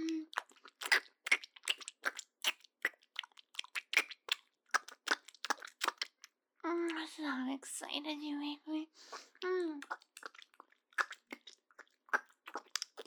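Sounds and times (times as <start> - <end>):
wet chewing of pizza with crisp crunchy bites: 0.0 - 6.4, 9.2 - 13.0
speech: 7.2 - 10.1.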